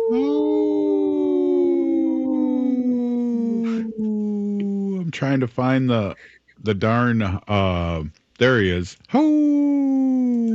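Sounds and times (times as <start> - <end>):
wolf howling: 0.0 - 5.0
speech: 0.1 - 0.4, 5.2 - 10.0.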